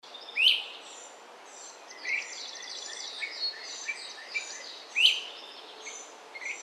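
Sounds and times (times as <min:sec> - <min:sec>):
great crested flycatcher calling: 0:00.1 - 0:06.6.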